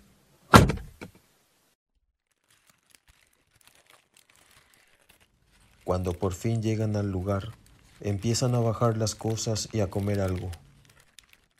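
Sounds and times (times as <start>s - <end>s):
car door shutting as people get into the car: 0.5s - 1.0s
speech: 5.9s - 10.6s.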